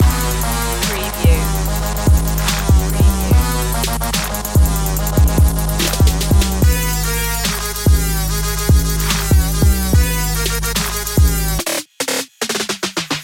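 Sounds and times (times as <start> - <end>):
808 boom loop: 0.0 - 13.2.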